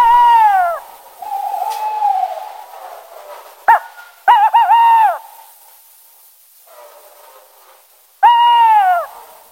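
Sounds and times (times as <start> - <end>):
tawny owl giving harmonic wavering wails played back on the radio: 0.0 - 2.8, 3.7 - 5.3, 8.2 - 9.2.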